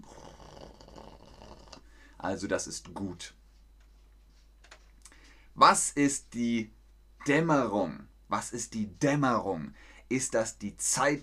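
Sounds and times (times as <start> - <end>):
voice imitating a cat purring: 0.0 - 1.9
speech: 2.2 - 3.4, 5.6 - 11.2.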